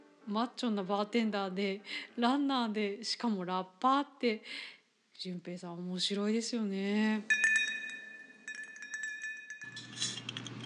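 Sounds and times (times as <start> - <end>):
speech: 0.3 - 7.4
glasses clinking in a toast: 7.3 - 10.6.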